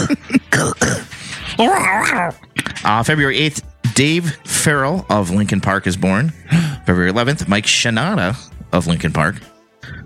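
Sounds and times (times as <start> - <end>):
person clearing throat: 0.0 - 2.8
speech: 0.6 - 1.0, 1.6 - 10.0.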